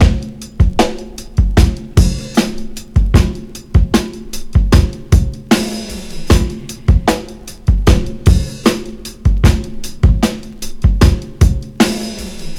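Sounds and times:
kick drum tuned to the F note: 0.0s - 0.8s, 1.4s - 2.2s, 3.0s - 4.0s, 4.6s - 5.6s, 6.3s - 8.6s, 9.3s - 10.3s, 10.9s - 11.8s
2000s drum loop in F: 0.0s - 12.5s.

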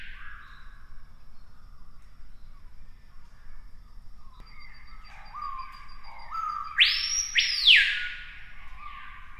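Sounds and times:
screaming piha ringing whistle screams: 4.5s - 9.1s.

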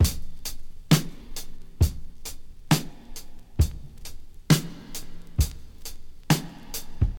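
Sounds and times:
breakbeat drum loop in E with kick drum tuned to E: 0.0s - 7.1s.

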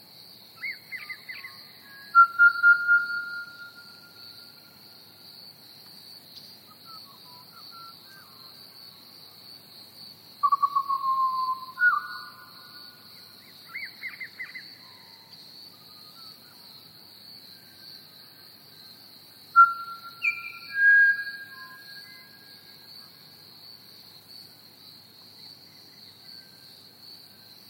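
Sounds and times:
crickets chirping: 0.0s - 27.6s
Pied Butcherbird singing flute-like whistles: 0.6s - 4.5s, 6.8s - 8.3s, 10.4s - 12.8s, 19.6s - 22.6s.

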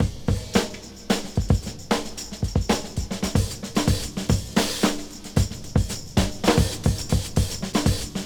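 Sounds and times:
116 bpm breakbeat drum loop in G key: 0.0s - 8.2s.

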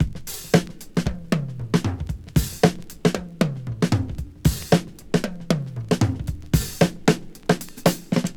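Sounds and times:
114 bpm drum beat loop in G sharp key: 0.0s - 8.3s.

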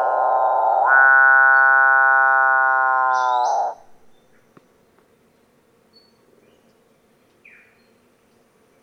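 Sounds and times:
capuchinbird calling with grating buzz and cow-like moan: 0.0s - 4.1s.

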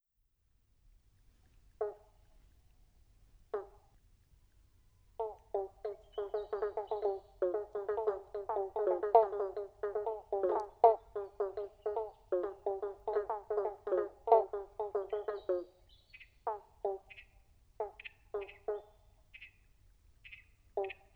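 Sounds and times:
motorbike frogs calling: 1.6s - 2.6s, 3.4s - 4.1s, 5.0s - 21.1s
western banjo frogs calling: 5.2s - 21.1s.

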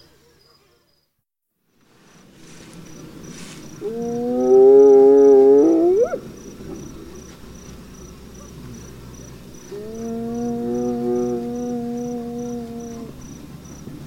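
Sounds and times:
hyena giving a long moaning whoop: 3.8s - 6.2s, 9.7s - 13.3s.

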